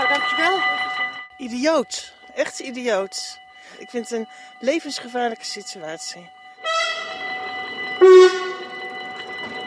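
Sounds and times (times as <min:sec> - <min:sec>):
speech: 0:00.1 - 0:06.4, 0:08.0 - 0:08.4
train horn blasts at a level crossing: 0:06.6 - 0:07.4, 0:08.0 - 0:08.8.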